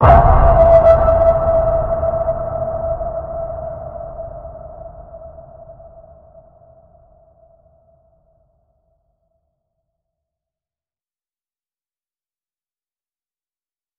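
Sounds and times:
deep waters ping tone in E: 0.0 - 4.5.

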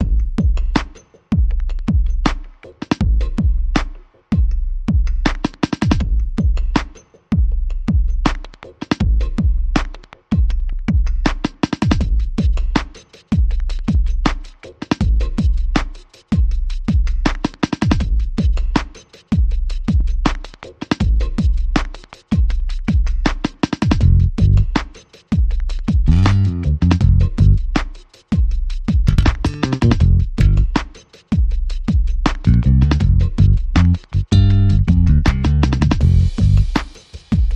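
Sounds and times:
drums: 0.0 - 37.5
bass guitar: 24.0 - 24.7, 26.1 - 27.7, 29.1 - 30.8, 32.5 - 36.8.

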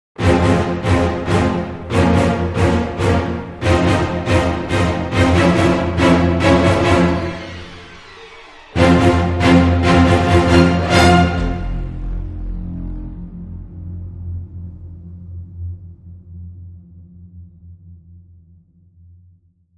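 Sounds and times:
dramatic music sting without percussion: 0.2 - 15.2.

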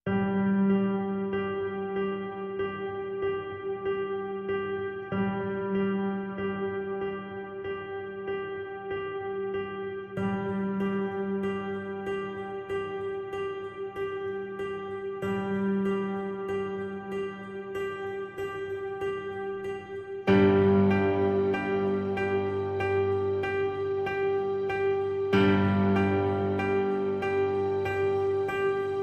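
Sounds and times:
persistent piano G note: 0.1 - 29.0.

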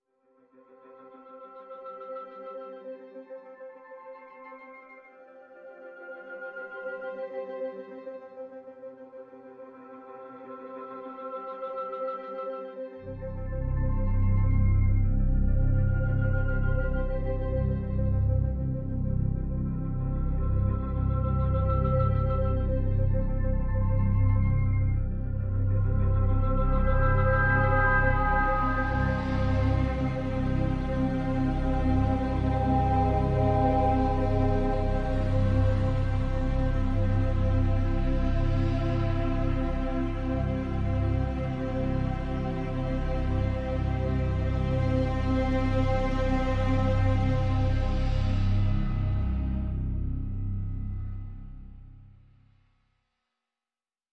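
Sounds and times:
synth pads: 13.1 - 52.1.

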